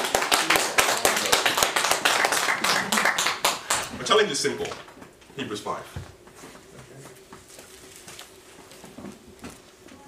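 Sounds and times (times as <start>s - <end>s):
audience applause: 0.0s - 4.0s
speech: 4.1s - 6.0s.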